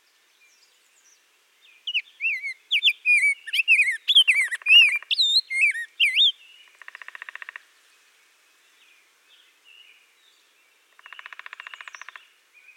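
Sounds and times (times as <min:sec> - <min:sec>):
rose-breasted grosbeak song: 0:00.4 - 0:07.5, 0:11.0 - 0:12.7.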